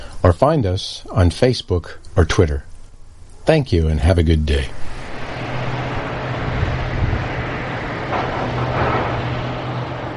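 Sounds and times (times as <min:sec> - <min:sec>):
speech: 0:00.2 - 0:02.7, 0:03.5 - 0:04.9
heavy haul trucks working at a coal mine with diesel drone: 0:04.1 - 0:10.1.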